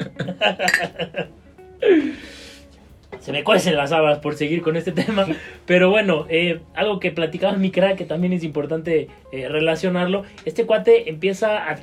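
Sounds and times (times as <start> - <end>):
people laughing: 0.0 - 1.3, 4.8 - 5.6
speech: 0.2 - 1.3, 3.4 - 11.8
glasses clinking in a toast: 0.6 - 1.0.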